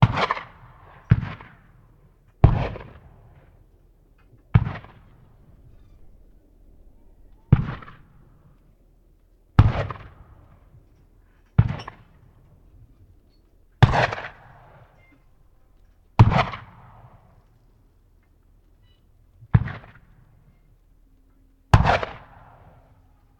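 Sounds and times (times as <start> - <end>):
black powder cannon firing: 0.0 - 3.6, 4.5 - 5.7, 7.5 - 8.4, 9.6 - 10.8, 11.6 - 12.4, 13.8 - 15.0, 16.2 - 17.4, 19.5 - 20.2, 21.7 - 23.0.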